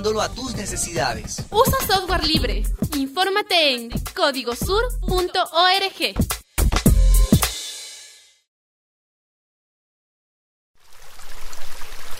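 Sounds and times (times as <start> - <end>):
speech: 0.0 - 6.4
water pouring with a gurgling splash: 10.8 - 12.1.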